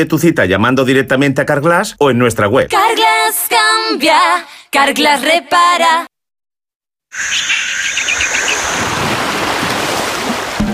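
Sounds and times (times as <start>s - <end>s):
speech: 0.0s - 6.1s, 7.1s - 9.0s
high tonal call: 7.1s - 8.9s
quick bird chirps: 7.1s - 8.9s
Caribbean ocean surf rolling onto a beach: 7.3s - 10.7s.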